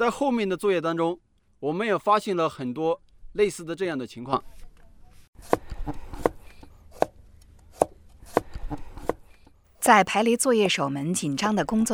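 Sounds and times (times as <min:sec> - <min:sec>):
speech: 0:00.0 - 0:04.6, 0:05.4 - 0:06.1, 0:09.8 - 0:11.9
kitchen knife chopping vegetables on a board: 0:05.4 - 0:09.5.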